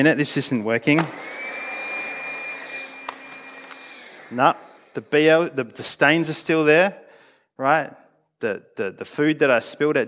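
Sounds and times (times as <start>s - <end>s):
speech: 0.0s - 1.4s, 4.3s - 7.0s, 7.6s - 10.0s
vacuum cleaner running: 1.0s - 6.0s.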